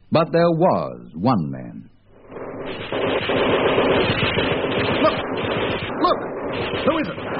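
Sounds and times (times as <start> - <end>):
speech: 0.1 - 1.9, 2.7 - 5.2
heavy Japanese machine gun fire: 2.2 - 7.3.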